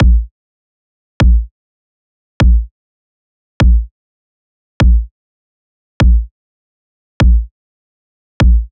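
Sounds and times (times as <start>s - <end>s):
pop kick drum loop at 100 bpm: 0.0s - 0.3s, 1.2s - 1.5s, 2.4s - 2.7s, 3.6s - 3.9s, 4.8s - 5.1s, 6.0s - 6.3s, 7.2s - 7.5s, 8.4s - 8.6s.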